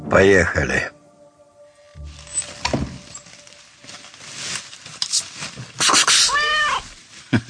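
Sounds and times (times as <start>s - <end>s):
speech: 0.1s - 1.0s
rustling: 1.9s - 7.4s
shuffling noises: 1.9s - 7.4s
cat meowing: 6.2s - 6.9s.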